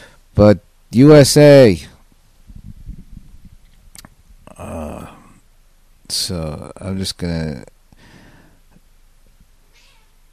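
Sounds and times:
speech: 0:00.4 - 0:01.9, 0:06.1 - 0:07.8
cat yowling: 0:09.7 - 0:10.2.

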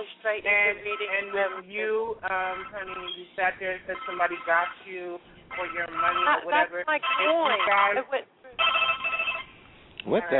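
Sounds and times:
speech: 0:00.0 - 0:08.8, 0:10.0 - 0:10.3
phone ringing with a melodic warbling ringtone: 0:00.7 - 0:01.7, 0:02.3 - 0:08.0, 0:08.6 - 0:09.6.

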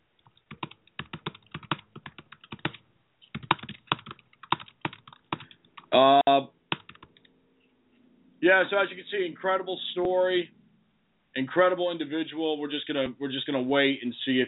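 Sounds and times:
typing a message on a computer keyboard: 0:00.2 - 0:05.9, 0:06.7 - 0:07.3
speech: 0:06.0 - 0:06.5, 0:08.4 - 0:10.6, 0:11.4 - 0:14.4.

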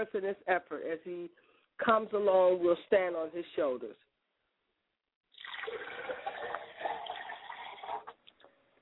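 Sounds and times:
speech: 0:00.0 - 0:04.1
water poured from a glass as a libation: 0:05.3 - 0:08.2.

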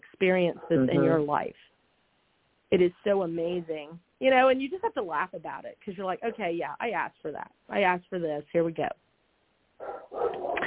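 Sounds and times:
speech: 0:00.2 - 0:01.7, 0:02.7 - 0:09.0
big dog barking: 0:09.8 - 0:10.6.

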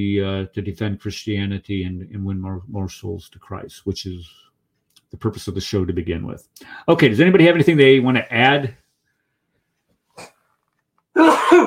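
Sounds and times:
speech: 0:00.0 - 0:04.5, 0:05.1 - 0:08.8
person sneezing: 0:11.2 - 0:11.6.

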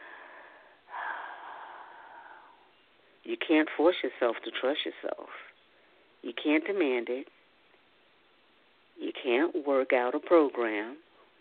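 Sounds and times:
deep breath: 0:00.0 - 0:03.2
speech: 0:03.2 - 0:05.5, 0:06.2 - 0:07.4, 0:09.0 - 0:11.4.

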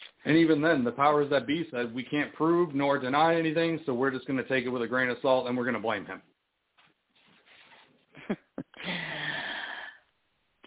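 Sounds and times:
speech: 0:00.3 - 0:06.3
deep breath: 0:08.8 - 0:10.1.

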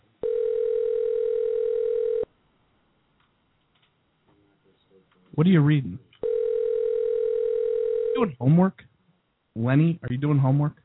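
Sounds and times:
telephone dial tone on a call line: 0:00.2 - 0:02.3, 0:06.2 - 0:08.2
speech: 0:05.4 - 0:06.0, 0:08.2 - 0:08.9, 0:09.6 - 0:10.8.

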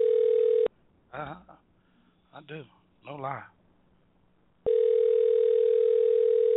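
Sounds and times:
ringing tone of an outgoing phone call: 0:00.0 - 0:00.7, 0:04.7 - 0:06.5
speech: 0:01.2 - 0:01.6, 0:02.4 - 0:03.6.

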